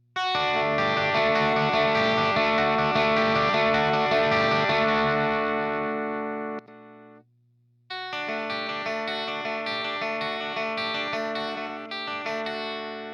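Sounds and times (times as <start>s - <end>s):
clean electric guitar with EMG89 pickup: 0.2s - 7.2s, 7.9s - 13.1s.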